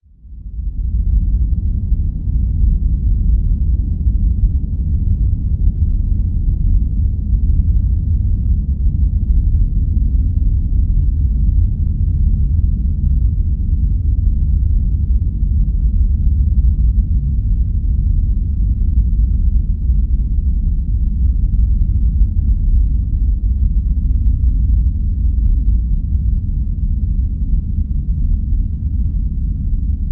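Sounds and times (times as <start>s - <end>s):
deep space rumble: 0.0s - 30.1s.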